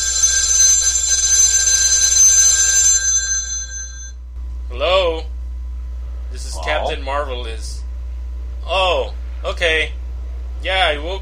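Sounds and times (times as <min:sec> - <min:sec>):
telephone ringing with a trilling tone: 0:00.0 - 0:04.2
faint low hum: 0:03.8 - 0:11.2
speech: 0:10.6 - 0:11.2.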